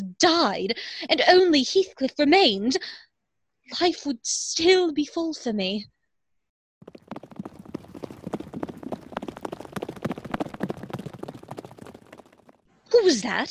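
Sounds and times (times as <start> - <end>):
speech: 0.2 - 3.1, 3.7 - 6.0, 12.9 - 13.4
horse hooves clip-clopping as a man rides off: 6.8 - 12.6.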